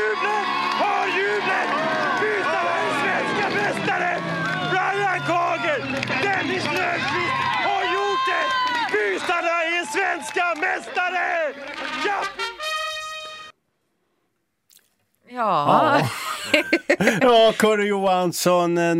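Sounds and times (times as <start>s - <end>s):
laughter: 0.0s - 8.3s, 15.6s - 17.9s
crowd cheering at a speedway race: 0.0s - 13.5s
speech: 8.4s - 12.6s, 15.3s - 18.9s.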